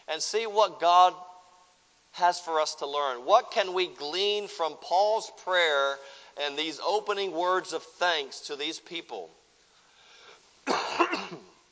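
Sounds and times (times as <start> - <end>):
speech: 0.1 - 1.3, 2.2 - 9.4
person coughing into a microphone during a sermon: 10.6 - 11.6.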